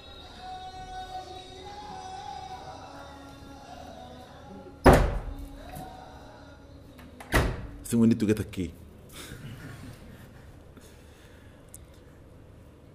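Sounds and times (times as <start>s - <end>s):
quiet room hum: 0.0s - 12.9s
door being shut with a sharp thud: 4.8s - 5.5s, 7.2s - 7.8s
speech: 7.9s - 8.8s.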